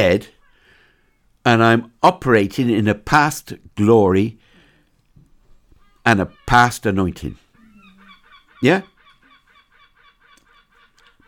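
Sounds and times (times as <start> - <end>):
speech: 0.0 - 0.4, 1.4 - 4.4, 6.0 - 7.4, 8.6 - 8.9
goose-like birds honking: 5.8 - 11.2.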